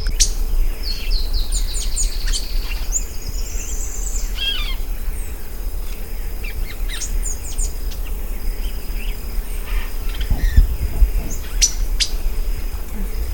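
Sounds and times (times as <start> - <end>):
magpie tanager Cissopis leveriana calling: 0.1 - 8.2, 9.0 - 13.2.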